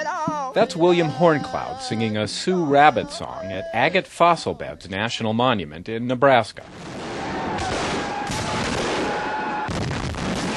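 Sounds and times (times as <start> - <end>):
speech: 0.6 - 6.9
gunfire at a Civil War battle reenactment at Manassas battlefield in Virginia: 6.8 - 10.5.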